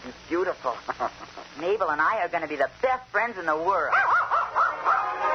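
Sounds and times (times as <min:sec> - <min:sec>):
speech: 0:00.0 - 0:04.2
puppy yipping and barking: 0:03.9 - 0:05.2.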